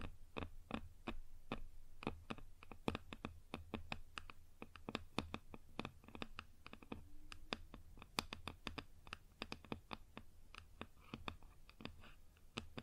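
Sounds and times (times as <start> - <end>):
fingertip taps on a wooden surface: 0.0 - 12.8.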